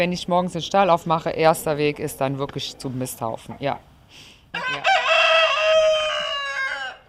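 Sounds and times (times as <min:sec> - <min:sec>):
speech: 0:00.0 - 0:04.8
rooster crowing: 0:04.6 - 0:07.0.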